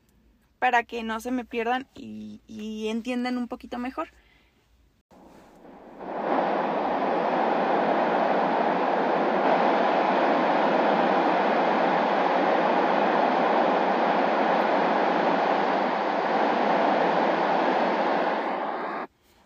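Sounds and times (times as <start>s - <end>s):
speech: 0.6s - 4.2s
white noise for baby sleep: 4.4s - 19.4s.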